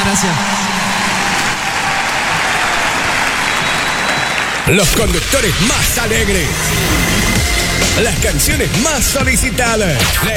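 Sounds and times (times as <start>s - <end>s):
loud dense applause from a crowd: 0.0s - 8.1s
speech: 0.2s - 0.5s, 4.7s - 10.3s.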